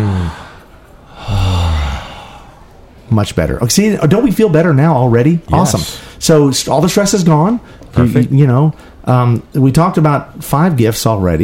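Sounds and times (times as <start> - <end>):
deep breath drawn in and let out with a voiced sigh: 0.0 - 2.9
speech: 3.2 - 11.4.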